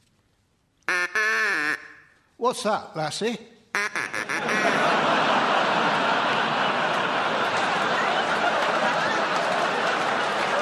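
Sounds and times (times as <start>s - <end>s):
duck quacking: 0.9s - 2.1s, 3.8s - 4.9s
speech: 2.4s - 4.0s
laughter: 4.0s - 10.6s.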